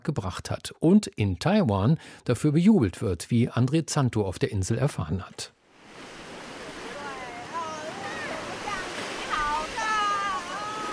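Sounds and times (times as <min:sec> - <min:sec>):
speech: 0:00.0 - 0:05.6
ocean waves washing onto a white sand beach in Taiwan: 0:05.6 - 0:10.9
small children calling out while jumping through waves: 0:06.9 - 0:10.9.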